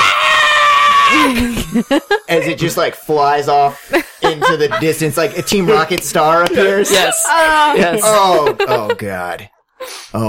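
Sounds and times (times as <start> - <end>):
person screaming high-pitched in imitated terror: 0.0 - 1.5
person laughing in short bursts: 1.2 - 2.9, 4.0 - 7.0, 7.7 - 9.2
speech: 1.8 - 10.2.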